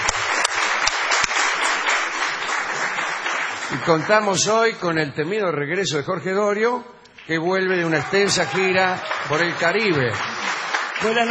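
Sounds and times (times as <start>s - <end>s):
studio audience applause at a radio show: 0.0s - 4.9s, 7.2s - 11.2s
speech: 3.9s - 10.3s, 11.0s - 11.2s.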